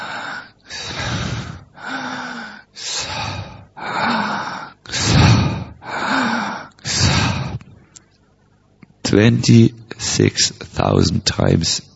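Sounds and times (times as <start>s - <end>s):
heavy forceful rasping breathing during meditative breath practice: 0.0s - 7.9s
speech: 9.1s - 11.9s.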